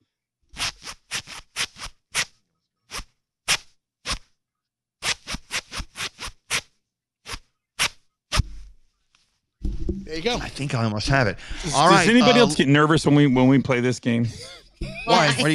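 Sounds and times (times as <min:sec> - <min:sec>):
zipper zipped up and down to the beat of a hit song: 0:00.5 - 0:04.3, 0:05.0 - 0:08.4
speech: 0:10.0 - 0:15.5
laughter: 0:10.2 - 0:15.5.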